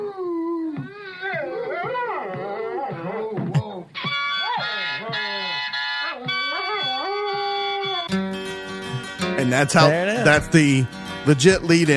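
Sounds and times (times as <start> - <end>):
dog howling and yipping along to harmonica: 0.0 - 8.1
harmonica playing sustained chords: 4.0 - 11.9
speech: 9.4 - 11.9.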